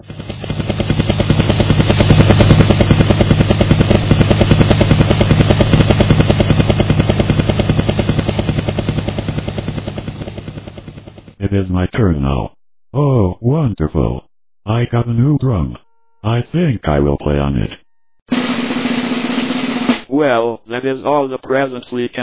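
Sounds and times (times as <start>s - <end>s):
helicopter engine drone: 0.0s - 11.4s, 18.3s - 20.1s
helicopter rotor thumping: 0.0s - 11.4s, 18.3s - 20.1s
speech: 11.8s - 18.4s, 20.1s - 22.2s.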